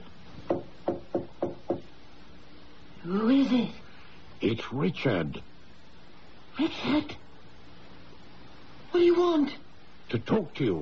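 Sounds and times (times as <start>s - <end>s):
soft tapping on a wooden door: 0.4s - 1.9s
speech: 3.1s - 3.8s, 4.4s - 5.5s, 6.6s - 7.2s, 8.9s - 10.8s.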